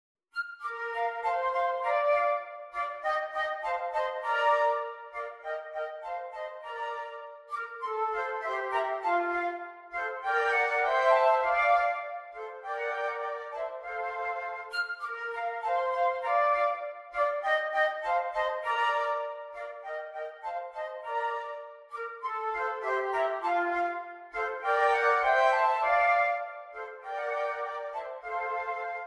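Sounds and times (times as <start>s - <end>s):
flute trio playing an allegro: 0.4s - 29.0s.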